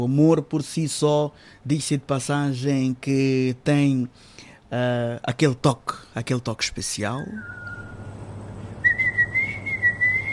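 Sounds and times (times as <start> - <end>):
speech: 0.0 - 7.6
low hum: 0.0 - 10.3
person whistling one long steady note: 7.4 - 8.0, 8.8 - 10.3.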